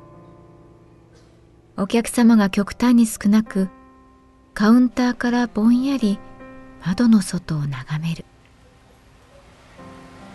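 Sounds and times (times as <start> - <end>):
speech: 1.8 - 3.8, 4.6 - 8.3
steady rain pattering on a road surface: 8.3 - 10.3.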